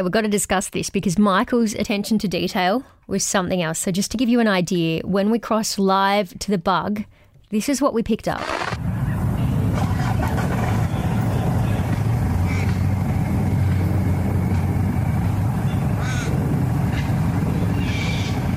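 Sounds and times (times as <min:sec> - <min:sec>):
speech: 0:00.0 - 0:09.0
faint bird calls chirping: 0:08.4 - 0:14.2, 0:15.0 - 0:18.5
traffic crossing a gap in the road: 0:08.4 - 0:18.5.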